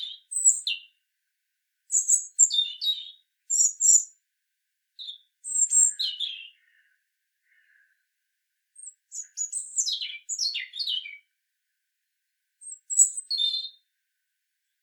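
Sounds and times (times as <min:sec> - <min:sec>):
European robin Erithacus rubecula singing: 0:00.0 - 0:01.0, 0:01.9 - 0:04.2, 0:05.0 - 0:07.9, 0:08.8 - 0:11.4, 0:12.6 - 0:13.9.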